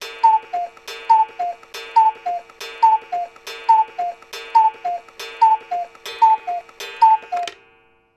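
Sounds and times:
household cuckoo clock striking: 0.0s - 8.1s.

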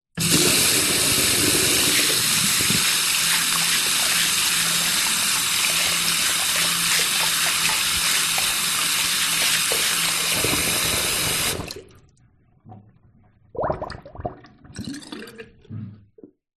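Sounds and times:
bathroom basin drain gargling: 0.2s - 12.0s, 13.5s - 16.0s
household tap short burst into bathroom basin with no plug: 0.2s - 12.0s.

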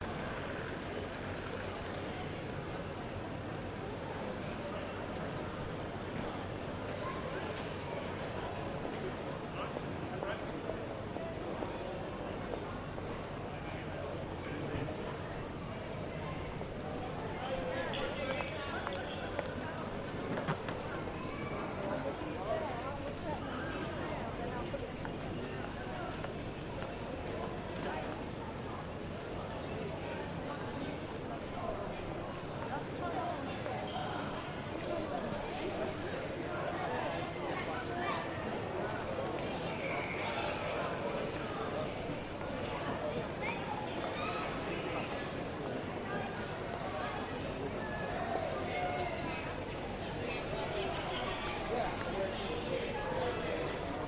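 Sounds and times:
train station crowd at Piccadilly in Manchester UK: 0.0s - 54.0s.

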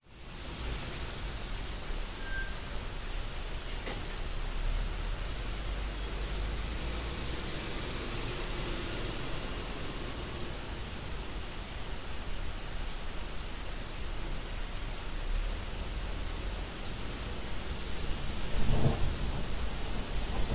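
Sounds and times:
rain on an urban industrial estate: 0.0s - 20.5s
thunder over an urban industrial estate: 18.0s - 20.5s.

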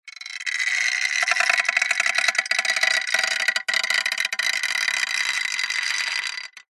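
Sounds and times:
metal stress creak with thin tone: 0.1s - 6.7s.

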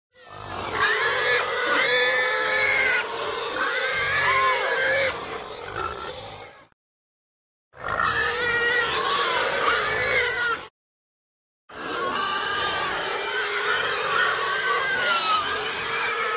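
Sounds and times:
herd of pigs squealing and screaming: 0.2s - 6.8s, 7.8s - 10.7s, 11.7s - 16.3s.

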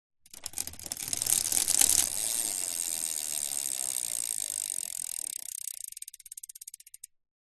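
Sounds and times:
bicycle pedaling: 0.3s - 7.1s.

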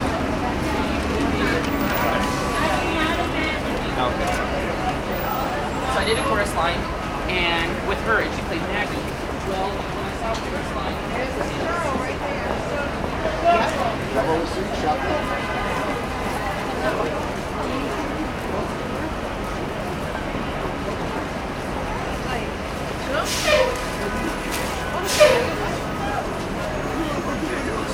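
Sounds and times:
urban city ambience in NYC Times Square: 0.0s - 27.9s.

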